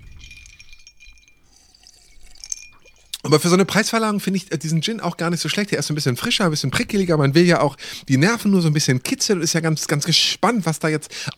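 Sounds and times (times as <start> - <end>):
soft liquid sounds: 0.0 - 3.8
glasses clinking in a toast: 0.0 - 7.7
quiet room noise: 0.0 - 11.3
speech: 3.3 - 11.3.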